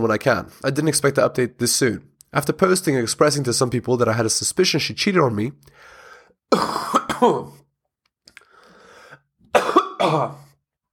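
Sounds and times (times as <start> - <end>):
speech: 0.0 - 7.6, 10.0 - 10.4
person coughing harshly: 6.5 - 7.6, 9.5 - 10.6.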